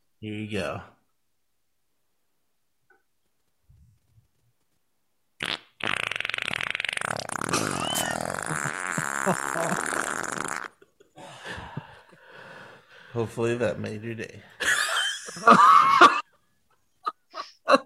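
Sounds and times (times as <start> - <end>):
speech: 0.2 - 1.0, 9.3 - 10.0, 13.2 - 14.6, 15.4 - 16.2
long loud sputtering fart from a man: 5.4 - 10.9.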